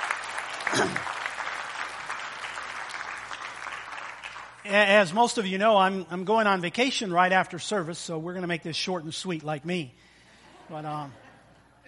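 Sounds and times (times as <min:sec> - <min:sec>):
crowd at a church service applauding: 0:00.0 - 0:05.1
speech: 0:00.8 - 0:01.1, 0:04.7 - 0:10.1, 0:10.7 - 0:11.2.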